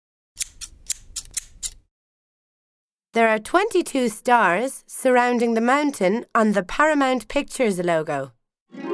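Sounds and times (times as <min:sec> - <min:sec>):
pair of scissors snipping: 0:00.4 - 0:01.8
speech: 0:03.2 - 0:08.8.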